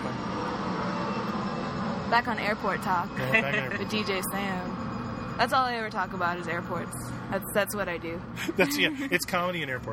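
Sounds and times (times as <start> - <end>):
small jet flying overhead: 0.0 - 5.4
speech: 2.1 - 4.8, 5.4 - 9.9
laughter: 3.2 - 4.0, 8.4 - 9.4.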